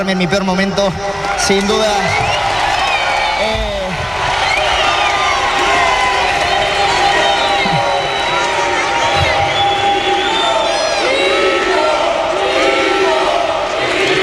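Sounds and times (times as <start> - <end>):
speech: 0.0 - 2.3
large indoor arena crowd applauding and cheering: 0.0 - 14.2
shrill whistles from arena crowd: 2.0 - 3.5, 4.3 - 11.4
scattered shouts from arena crowd: 2.8 - 14.2.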